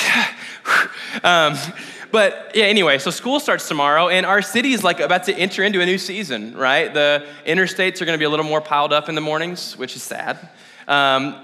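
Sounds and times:
heavy breathing into the microphone: 0.0s - 2.2s, 10.4s - 10.9s
speech: 1.2s - 11.4s.

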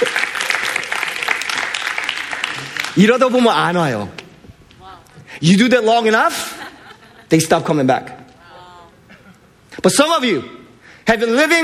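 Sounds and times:
audience applause at a talk: 0.0s - 3.2s
speech: 3.0s - 4.2s, 5.4s - 6.6s, 7.3s - 8.2s, 9.8s - 11.6s
laughter: 6.3s - 7.5s.

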